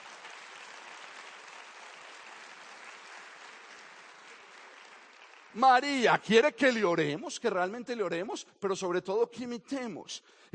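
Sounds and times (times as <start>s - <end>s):
crowd applauding: 0.0s - 6.8s
speech: 5.6s - 10.5s.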